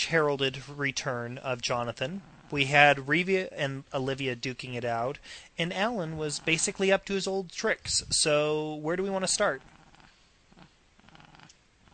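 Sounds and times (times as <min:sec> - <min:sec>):
speech: 0:00.0 - 0:09.8
cat growling or purring: 0:02.0 - 0:03.0, 0:06.0 - 0:06.9, 0:09.4 - 0:11.9.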